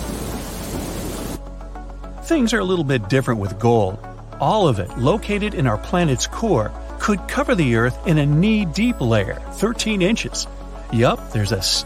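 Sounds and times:
deep loud rumble of thunder: 0:00.0 - 0:01.4
heavy rain pouring: 0:00.0 - 0:01.4
speech: 0:02.3 - 0:11.8.

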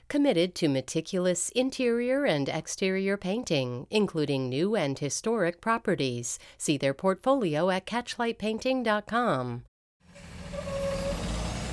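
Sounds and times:
speech: 0:00.1 - 0:09.7
whining squeal: 0:10.1 - 0:11.7
diesel school bus engine droning: 0:10.2 - 0:11.7.

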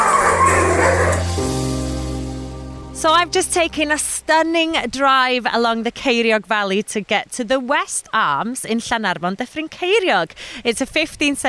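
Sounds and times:
pack of husky dogs yipping and barking at a husky dog ride in North Wales: 0:00.0 - 0:01.4
speech: 0:03.0 - 0:11.4.

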